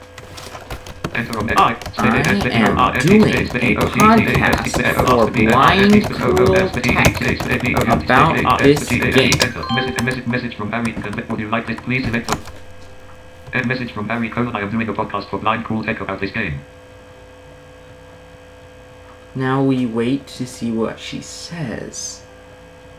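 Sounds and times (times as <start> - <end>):
computer keyboard typing a chat message: 0.0 - 12.7, 13.4 - 13.9
speech: 1.2 - 12.5, 13.5 - 16.8, 19.4 - 22.2.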